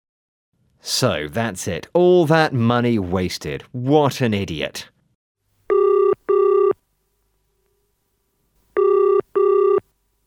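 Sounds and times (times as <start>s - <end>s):
speech: 0.8s - 4.9s
telephone ringing in a classic double-ring pattern: 5.7s - 6.8s, 8.8s - 9.9s.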